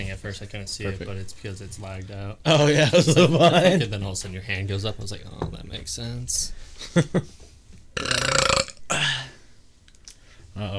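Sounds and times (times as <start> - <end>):
speech: 0.0 - 7.4, 8.0 - 9.1, 10.6 - 10.7
loud burping: 8.0 - 9.4.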